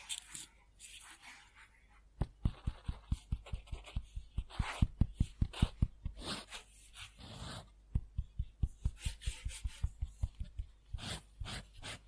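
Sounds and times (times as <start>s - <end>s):
pen scribbling on paper: 2.4s - 7.8s, 8.8s - 12.0s.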